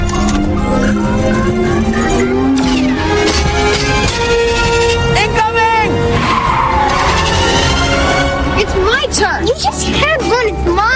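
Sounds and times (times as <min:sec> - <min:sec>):
car engine rumble: 0:00.0 - 0:10.9
car tires screeching while skidding across pavement: 0:00.5 - 0:08.7.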